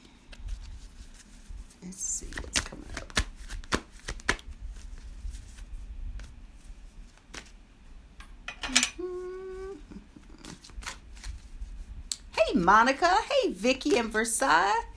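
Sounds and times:
deck of cards being shuffled: 0.2s - 7.6s, 10.2s - 11.8s
speech: 1.8s - 3.0s, 12.6s - 14.9s.

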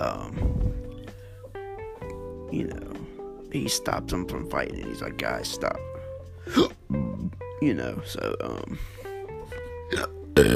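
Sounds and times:
speech: 2.5s - 2.9s, 3.5s - 5.9s, 6.5s - 6.8s, 7.6s - 9.0s, 9.9s - 10.5s
soft voiced throat sounds from someone with hiccups: 6.4s - 7.5s, 9.9s - 10.5s
loud throaty hiccup: 9.9s - 10.5s.

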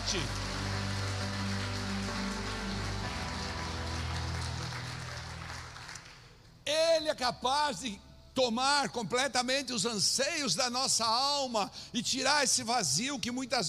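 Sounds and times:
audience applauding: 0.0s - 6.5s
speech: 0.1s - 0.4s, 7.1s - 13.6s.

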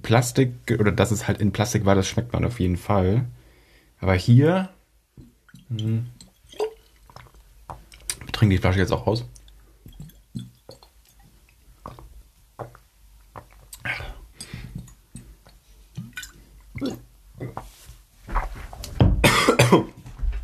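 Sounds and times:
speech: 0.1s - 3.4s, 4.0s - 4.8s, 5.6s - 6.2s, 8.4s - 9.4s
person coughing and sputtering after choking on water: 19.2s - 20.0s.

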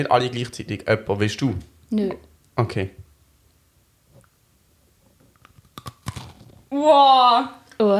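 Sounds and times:
speech: 0.0s - 3.0s, 6.7s - 7.9s
crisp food being bitten and chewed: 5.3s - 6.6s.

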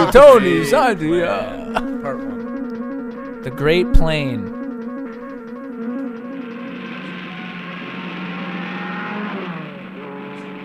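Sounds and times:
speech: 0.1s - 2.3s, 3.4s - 4.6s
race car engine revving and speeding: 4.9s - 10.6s.

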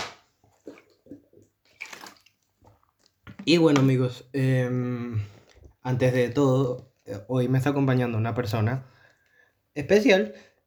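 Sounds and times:
person gulping water from a bottle: 0.6s - 3.5s
speech: 3.4s - 9.0s, 9.8s - 10.5s.

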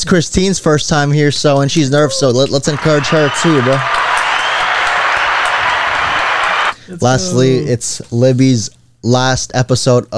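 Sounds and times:
speech: 0.0s - 4.2s, 6.9s - 10.1s
audience clapping: 2.5s - 6.8s.

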